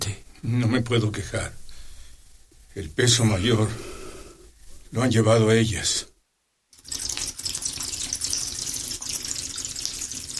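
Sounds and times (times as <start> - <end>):
speech: 0.4 - 1.6, 2.8 - 4.0, 4.9 - 6.1
water from a tap filling a bucket: 6.8 - 10.3.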